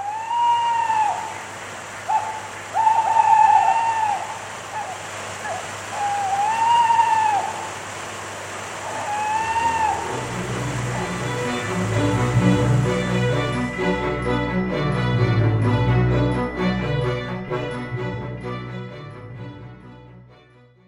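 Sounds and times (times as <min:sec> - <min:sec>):
tawny owl quavering hoots in winter woodland on a farm in Norfolk: 0:00.0 - 0:08.0, 0:08.7 - 0:10.3
low droning background sound: 0:01.0 - 0:20.6.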